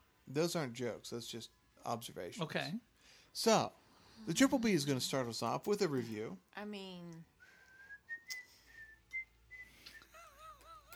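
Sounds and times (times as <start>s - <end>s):
speech: 0.3s - 7.3s
person whistling a tune: 7.4s - 10.3s.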